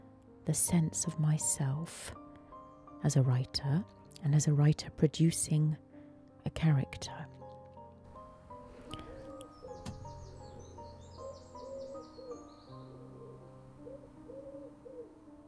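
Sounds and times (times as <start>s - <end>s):
speech: 0.5s - 2.2s, 3.0s - 5.9s, 6.5s - 7.4s
smaller birds chirping and twittering: 8.1s - 15.4s
wood pigeon cooing: 8.8s - 15.4s.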